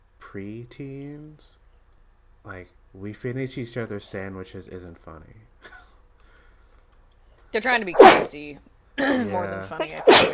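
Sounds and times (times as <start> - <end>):
people chatting: 0.2 - 1.6, 2.5 - 5.5, 7.6 - 10.3
speech: 0.3 - 1.6, 2.4 - 5.8, 7.5 - 10.3
person sneezing: 8.0 - 8.3, 9.8 - 10.3.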